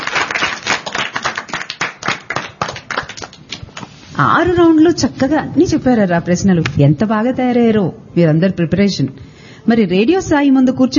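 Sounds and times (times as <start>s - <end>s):
children clapping in applause after a quiz round: 0.0s - 3.9s
speech: 4.2s - 10.9s.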